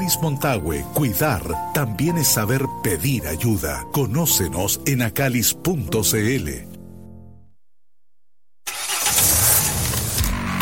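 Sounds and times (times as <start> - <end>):
speech: 0.1 - 6.8
car engine starting: 8.7 - 10.6.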